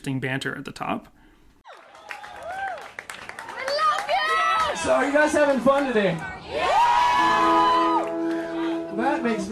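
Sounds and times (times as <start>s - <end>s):
speech: 0.0s - 1.2s, 4.8s - 7.6s, 9.0s - 9.5s
concert audience cheering and yelling: 1.7s - 9.5s
rough crowd wash: 3.4s - 9.5s.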